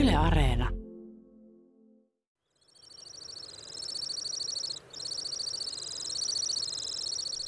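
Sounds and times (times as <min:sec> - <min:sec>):
speech: 0:00.2 - 0:00.8
Temminck's stint giving a long high rapid trill: 0:02.6 - 0:07.4.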